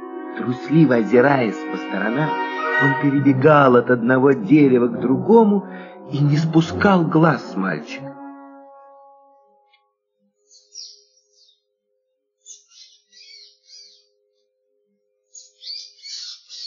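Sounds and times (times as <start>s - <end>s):
speech: 0.4s - 8.1s
small bird chirping loudly and agitatedly: 10.4s - 11.6s, 12.4s - 14.1s, 15.3s - 16.6s.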